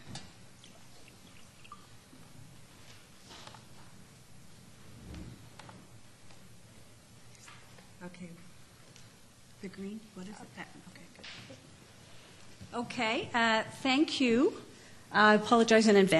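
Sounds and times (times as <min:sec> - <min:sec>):
water pouring into a glass: 0:00.6 - 0:01.9
speech: 0:09.7 - 0:11.8, 0:12.7 - 0:16.1.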